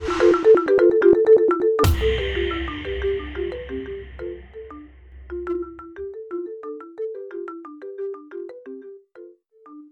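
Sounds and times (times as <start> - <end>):
remixed mobile phone ringtone: 0.0 - 7.0.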